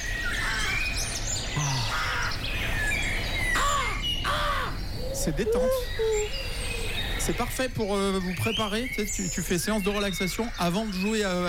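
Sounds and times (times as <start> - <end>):
smaller birds chirping in woodland near Bern: 0.0 - 11.4
crows cawing in woodland near Bern: 1.6 - 2.5, 3.6 - 4.8
speech: 5.2 - 6.5, 7.2 - 11.4.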